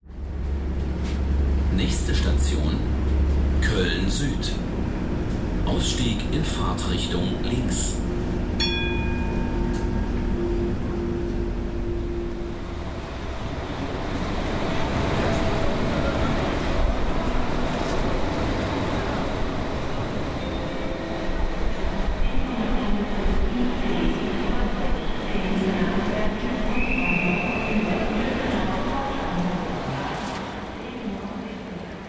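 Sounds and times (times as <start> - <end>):
moving passenger train rumble and rattle: 0.0 - 32.0
speech: 1.8 - 3.1, 3.7 - 5.0, 5.7 - 8.1.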